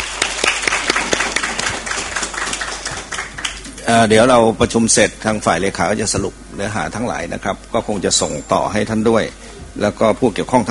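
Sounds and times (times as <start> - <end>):
audience applause at a Ministry of Public Health meeting: 0.0 - 3.7
speech: 3.9 - 10.7.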